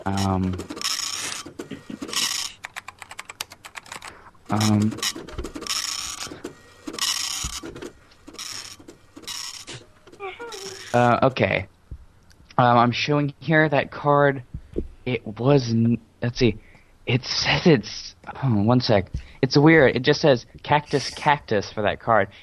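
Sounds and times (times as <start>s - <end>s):
speech: 0.0s - 0.8s, 4.5s - 5.6s, 10.9s - 11.7s, 12.6s - 14.5s, 15.1s - 22.4s
dot matrix printer printing in harsh buzzing passes: 0.0s - 2.7s, 4.5s - 11.0s.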